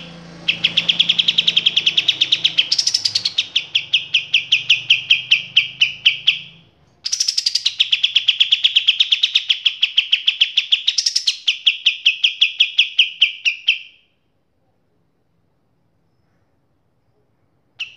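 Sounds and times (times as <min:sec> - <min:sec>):
faint low hum: 0:00.0 - 0:10.0, 0:13.9 - 0:17.9
kapas tembak training song: 0:00.0 - 0:14.3, 0:15.8 - 0:17.9.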